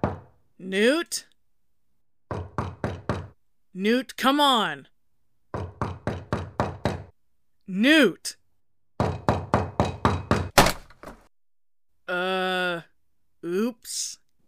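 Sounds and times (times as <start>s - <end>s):
rapid heavy pounding on a door: 0.0s - 0.3s, 2.3s - 3.4s, 5.5s - 7.1s, 9.0s - 10.8s
speech: 0.7s - 1.3s, 3.8s - 4.9s, 7.7s - 8.4s, 12.1s - 14.2s
loud splintering crash of a door breaking through: 10.5s - 11.2s.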